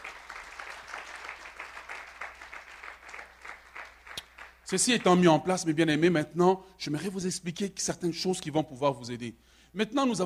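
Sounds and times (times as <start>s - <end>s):
church congregation applauding at a morning service: 0.0s - 5.2s
speech: 4.7s - 10.2s.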